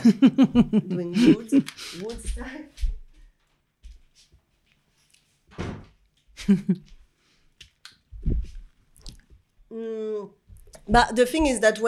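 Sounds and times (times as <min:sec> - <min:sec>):
laughter: 0:00.0 - 0:01.8, 0:06.4 - 0:06.9
speech: 0:00.0 - 0:02.9, 0:06.4 - 0:06.9, 0:09.8 - 0:11.8
door being pushed shut: 0:05.5 - 0:06.0.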